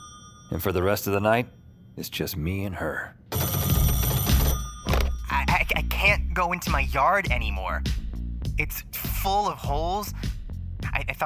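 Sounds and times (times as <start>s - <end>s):
telephone ringing: 0.0s - 1.1s, 3.3s - 5.6s
speech: 0.5s - 3.2s, 5.6s - 8.0s, 8.6s - 10.3s, 11.0s - 11.2s.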